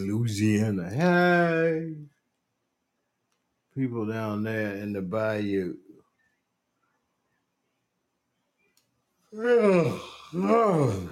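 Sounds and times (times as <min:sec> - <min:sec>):
speech: 0:00.0 - 0:02.1, 0:03.8 - 0:05.8, 0:09.3 - 0:11.1
big drawn-out yawn: 0:09.3 - 0:11.1.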